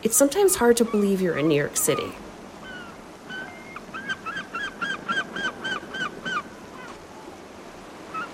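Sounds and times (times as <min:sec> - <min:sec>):
speech: 0:00.0 - 0:02.3
ocean waves: 0:00.0 - 0:08.3
seagulls crying with harsh nasal calls: 0:02.6 - 0:07.0, 0:08.0 - 0:08.3.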